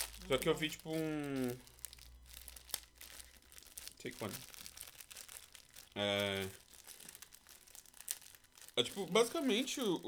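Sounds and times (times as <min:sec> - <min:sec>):
plastic wrapper of a sesame snack bar crinkling: 0:00.0 - 0:10.0
speech: 0:00.3 - 0:01.7, 0:04.0 - 0:04.5, 0:06.0 - 0:06.6, 0:08.8 - 0:10.0.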